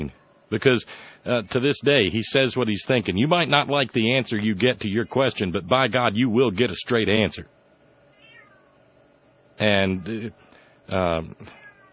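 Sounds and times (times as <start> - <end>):
speech: 0.0 - 7.6, 9.6 - 11.6
cat meowing: 8.1 - 8.8, 11.5 - 11.9.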